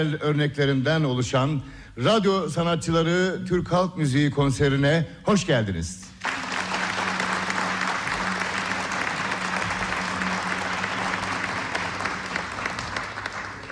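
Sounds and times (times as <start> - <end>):
speech: 0.0 - 6.1
audience applause for choir and conductor at a folk music concert: 6.2 - 13.6.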